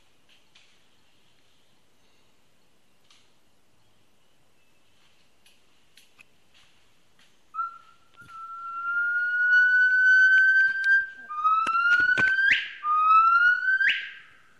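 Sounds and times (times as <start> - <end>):
Hainan gibbon song: 7.6 - 14.2.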